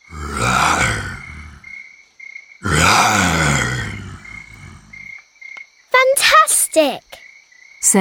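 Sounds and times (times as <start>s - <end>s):
lion roaring: 0.0s - 1.7s, 2.6s - 5.1s
speech: 6.8s - 7.0s.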